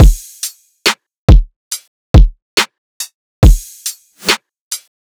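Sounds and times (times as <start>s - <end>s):
riddim drum loop: 0.0s - 0.6s, 3.4s - 4.4s.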